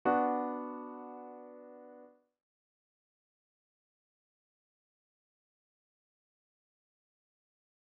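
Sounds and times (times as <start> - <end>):
B minor chord progression: 0.0 - 2.2.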